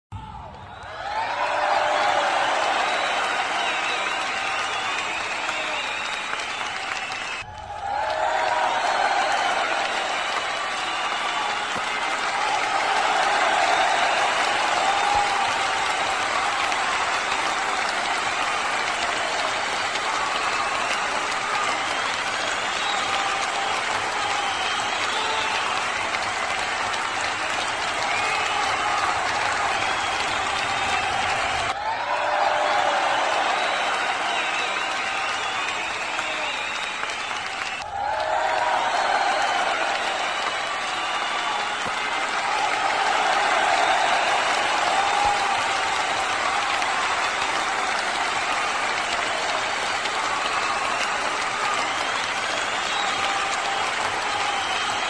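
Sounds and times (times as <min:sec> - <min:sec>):
applause: 0:00.2 - 0:55.0.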